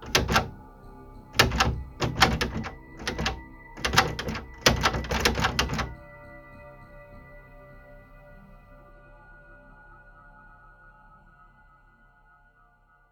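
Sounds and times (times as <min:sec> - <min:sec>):
metal door handle rattling violently: 0:00.0 - 0:00.6, 0:01.4 - 0:06.0.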